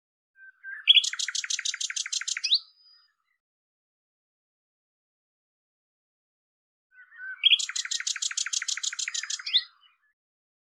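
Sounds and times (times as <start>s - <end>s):
common nightingale singing: 0.4s - 3.4s, 6.9s - 10.2s.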